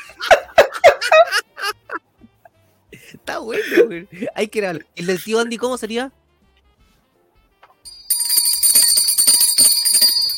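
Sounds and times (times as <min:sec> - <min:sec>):
laughter: 0:00.0 - 0:02.0
speech: 0:03.4 - 0:06.2
small hand bell ringing: 0:07.9 - 0:10.3.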